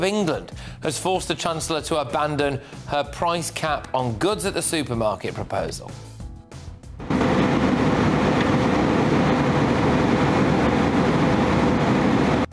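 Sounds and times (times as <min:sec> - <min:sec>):
speech: 0:00.0 - 0:06.1
fighter jet engine roar and whoosh: 0:07.0 - 0:12.5.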